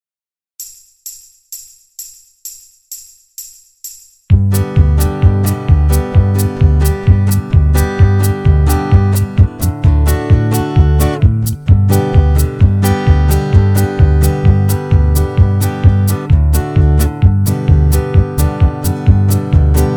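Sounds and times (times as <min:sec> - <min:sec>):
MIDI bass in the key of G: 0:04.3 - 0:19.9
banjo backing track: 0:04.3 - 0:19.9.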